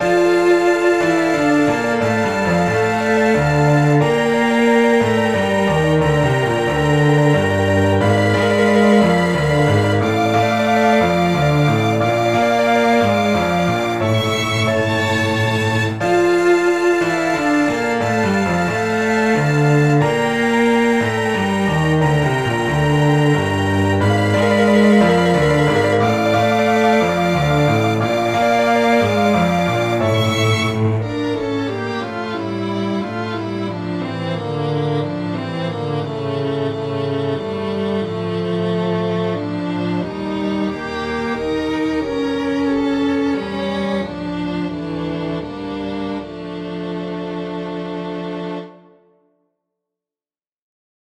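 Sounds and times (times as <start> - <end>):
cello in melodramatic tragic music: 0.0 - 49.0
violin in melodramatic tragic music: 0.0 - 49.1
piano in melodramatic tragic music: 0.0 - 49.4.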